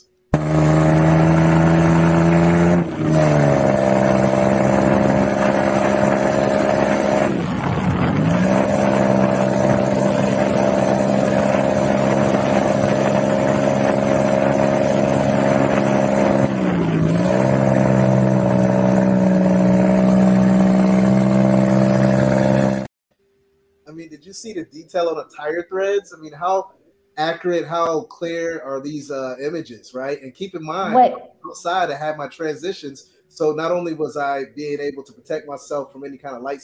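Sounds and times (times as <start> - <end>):
ATV engine droning while being driven in the Dominican Republic: 0.0 - 22.9, 30.7 - 32.6
speech: 24.5 - 26.6, 27.2 - 36.6.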